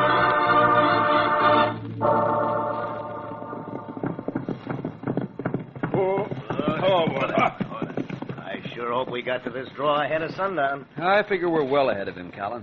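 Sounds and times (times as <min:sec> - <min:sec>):
sustained tonal sound: 0:00.0 - 0:04.3
horses' hooves clip-clopping as riders set off: 0:02.8 - 0:12.6
speech: 0:09.1 - 0:12.6.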